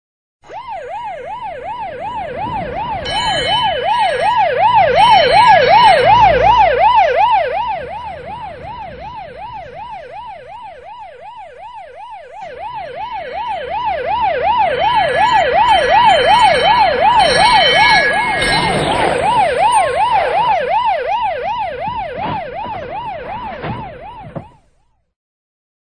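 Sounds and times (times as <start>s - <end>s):
sirens: 0.4s - 25.1s
car noise: 1.1s - 25.0s
tram horns: 2.5s - 9.0s, 14.4s - 21.1s.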